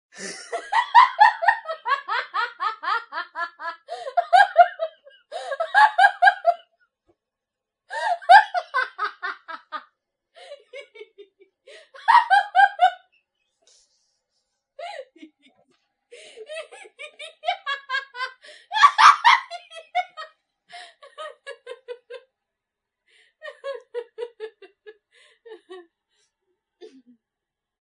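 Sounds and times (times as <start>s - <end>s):
woman laughing: 0.2s - 6.6s, 7.9s - 9.8s, 10.4s - 13.0s, 14.8s - 22.2s, 23.4s - 25.9s.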